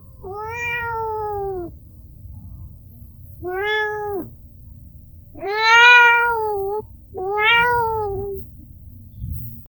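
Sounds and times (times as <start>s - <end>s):
cat meowing sadly: 0.0s - 1.8s, 3.4s - 4.3s, 5.4s - 8.5s.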